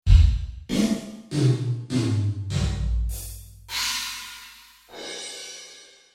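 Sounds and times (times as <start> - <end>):
small drum kit ambience: 0.0 - 6.0
cymbals on overhead microphones: 3.1 - 6.0.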